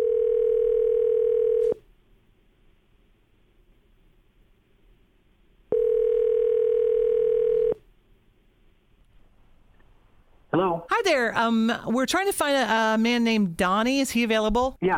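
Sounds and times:
ringback tone of an outgoing phone call from a radio studio: 0.0 - 1.8, 5.7 - 7.8
speech: 10.7 - 14.9.

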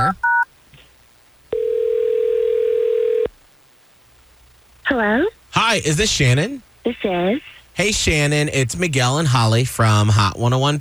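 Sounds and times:
electronic phone dial or ringback tone: 1.5 - 3.3
speech: 5.0 - 10.7.

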